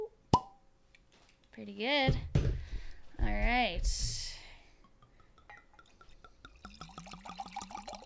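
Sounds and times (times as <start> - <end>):
speech: 1.6 - 2.4, 3.2 - 4.3
soft drips of wine: 4.8 - 8.0
rosé wine glugging into a glass: 4.9 - 8.0.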